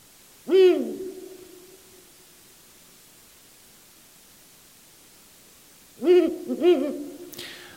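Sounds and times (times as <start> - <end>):
faint background hiss: 0.0 - 7.7
Ural owl hooting: 0.4 - 2.0, 6.0 - 7.6.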